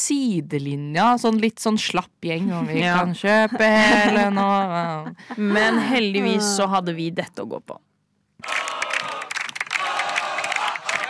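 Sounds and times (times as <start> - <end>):
speech: 0.1 - 8.6
football crowd cheering after winning a cup match: 8.4 - 11.0.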